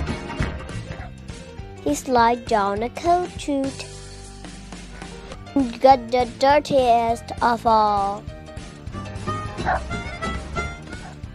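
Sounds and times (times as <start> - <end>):
speech: 1.8 - 3.9, 5.6 - 8.3, 9.7 - 10.0
dog barking: 9.6 - 9.9, 11.0 - 11.2.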